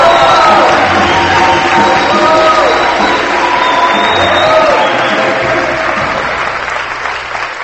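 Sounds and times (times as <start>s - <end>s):
church congregation whooping and shouting: 0.0s - 6.2s
church congregation clapping: 0.0s - 7.6s.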